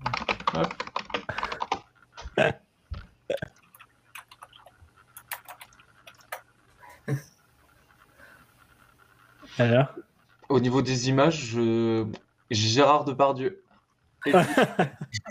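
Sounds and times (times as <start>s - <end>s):
typing on a computer keyboard: 0.0s - 1.9s, 3.6s - 6.5s
speech: 0.6s - 1.3s, 2.4s - 2.6s, 9.6s - 13.6s, 14.2s - 15.1s
laughter: 14.2s - 15.2s.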